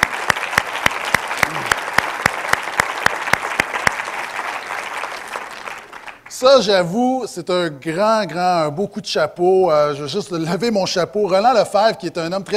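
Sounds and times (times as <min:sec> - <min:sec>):
group applauding: 0:00.0 - 0:06.5
speech: 0:06.4 - 0:12.5.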